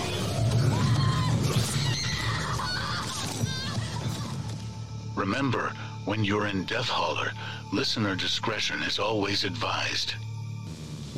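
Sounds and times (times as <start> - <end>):
several people screaming: 0.0 - 4.5
speech: 5.2 - 10.3.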